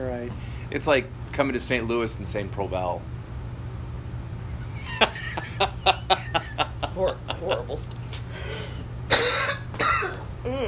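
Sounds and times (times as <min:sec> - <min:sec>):
speech: 0:00.0 - 0:03.2, 0:07.1 - 0:08.2
low steady hum: 0:00.0 - 0:10.6
laughter: 0:04.6 - 0:07.9
person coughing: 0:09.1 - 0:10.3.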